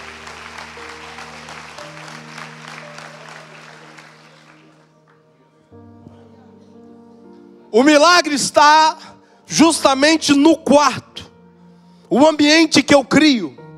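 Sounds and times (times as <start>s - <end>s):
audience clapping loudly: 0.0s - 5.2s
speech: 7.7s - 11.1s, 12.1s - 13.6s.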